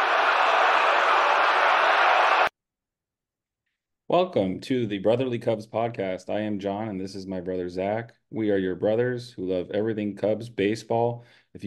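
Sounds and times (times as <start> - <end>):
big stadium crowd cheering after a home run: 0.0 - 2.5
speech: 4.1 - 11.6.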